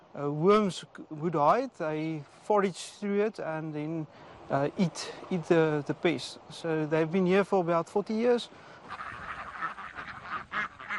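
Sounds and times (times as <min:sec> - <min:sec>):
speech: 0:00.2 - 0:09.0
ducks quacking as they patrol a vineyard: 0:08.5 - 0:10.9.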